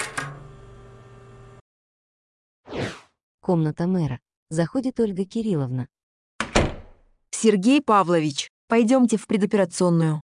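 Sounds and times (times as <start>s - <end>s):
speech: 3.5s - 5.9s, 7.4s - 10.2s
door opening with a sharp click: 6.4s - 7.0s.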